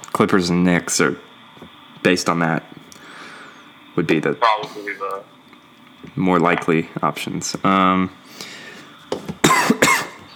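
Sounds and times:
speech: 0.2s - 1.3s, 2.0s - 2.8s, 4.0s - 5.4s, 6.0s - 8.5s
harsh coughs: 9.4s - 10.3s.

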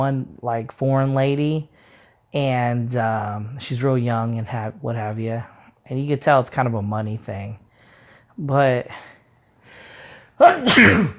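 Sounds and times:
speech: 0.0s - 7.6s, 8.4s - 9.1s, 10.4s - 11.1s
loud human sneeze: 10.4s - 11.1s.

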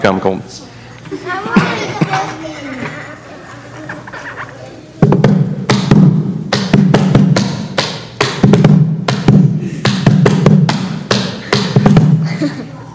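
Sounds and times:
speech: 0.0s - 2.8s
laughter: 1.1s - 4.6s, 12.2s - 12.9s
drumming on a plastic bucket: 5.0s - 12.2s.

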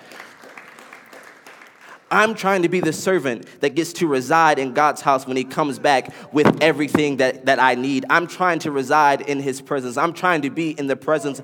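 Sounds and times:
audience clapping hands to give God praise: 0.0s - 2.6s
speech: 2.1s - 11.4s.

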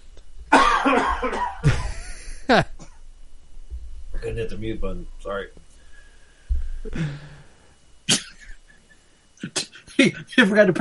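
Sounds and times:
person coughing loudly into the microphone: 0.5s - 2.0s, 8.1s - 8.6s, 9.4s - 9.9s
speech: 0.9s - 1.6s, 2.5s - 2.7s, 4.4s - 5.6s, 6.8s - 7.4s, 9.4s - 10.7s.

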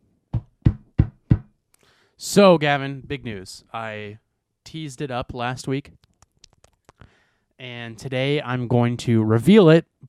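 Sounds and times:
firm knocks on a door: 0.3s - 1.5s
speech: 2.2s - 6.1s, 7.6s - 10.0s.

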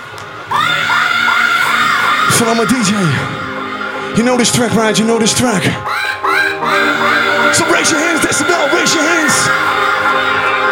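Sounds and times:
festival crowd screaming: 0.4s - 4.0s, 5.8s - 10.7s
high shrieks: 0.5s - 10.7s
speech: 2.4s - 3.4s, 4.1s - 5.9s, 7.5s - 10.7s.

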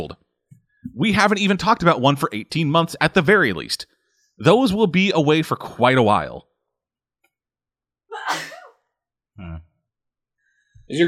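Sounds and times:
speech: 0.0s - 0.2s, 1.0s - 6.5s, 10.9s - 11.0s
woman sneezing: 8.1s - 8.7s
low voiced sound: 9.4s - 9.6s.

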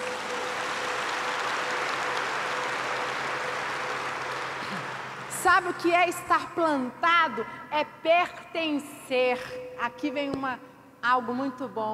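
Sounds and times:
crowd applauding in a large room: 0.0s - 5.6s
speech: 5.4s - 11.9s.

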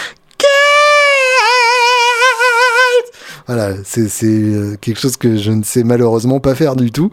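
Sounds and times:
male glam metal singer's high-pitched scream: 0.4s - 3.1s
speech: 3.5s - 7.1s.

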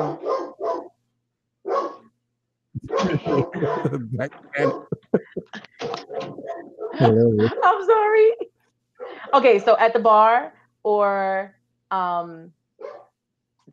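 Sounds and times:
dog barking at doorbell: 0.0s - 1.0s, 1.7s - 2.1s, 2.9s - 3.9s, 4.6s - 5.0s, 12.8s - 13.1s
laughter: 2.8s - 6.0s, 7.0s - 7.8s
speech: 3.2s - 5.6s, 7.0s - 8.4s, 9.3s - 12.6s.

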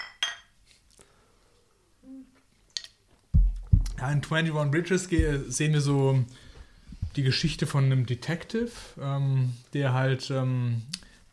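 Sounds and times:
glasses clinking together in a toast: 0.0s - 0.5s
speech: 4.0s - 6.4s, 7.2s - 11.3s.

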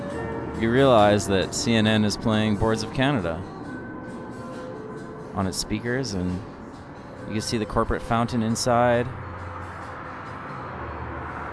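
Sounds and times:
heavy trucks rumbling past: 0.0s - 11.5s
speech: 0.6s - 3.6s, 5.4s - 6.5s, 7.3s - 9.2s.

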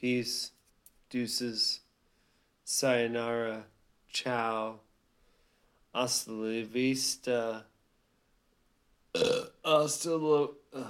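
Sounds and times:
speech: 0.0s - 1.8s, 2.7s - 4.9s, 6.0s - 7.7s, 9.2s - 10.8s
cat burping: 9.1s - 9.6s.

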